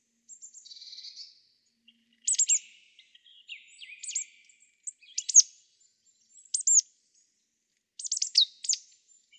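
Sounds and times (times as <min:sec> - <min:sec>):
Marsh Tit calls: 0:02.2 - 0:02.6, 0:04.8 - 0:05.4, 0:06.5 - 0:06.8, 0:08.0 - 0:08.8.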